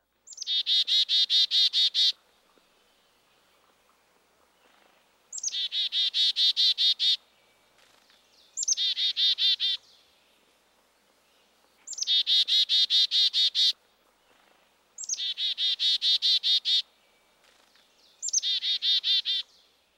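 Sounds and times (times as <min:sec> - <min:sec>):
black-capped chickadee calling: 0:00.3 - 0:02.2, 0:05.3 - 0:07.2, 0:08.6 - 0:09.9, 0:11.8 - 0:13.8, 0:15.0 - 0:16.9, 0:18.2 - 0:19.6.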